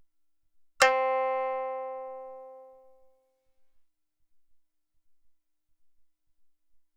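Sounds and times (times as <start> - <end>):
high shamisen: 0.8 - 3.0.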